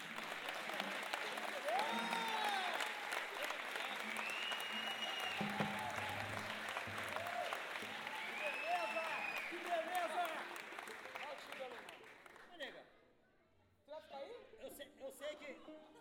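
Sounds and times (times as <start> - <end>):
audience whooping and cheering: 0.0 - 10.9
audience applause: 0.0 - 12.6.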